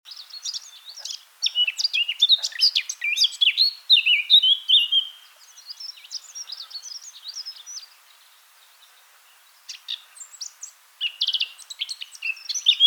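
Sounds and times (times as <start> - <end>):
Eurasian blackcap Sylvia atricapilla singing: 0.1 - 8.0, 9.7 - 12.8.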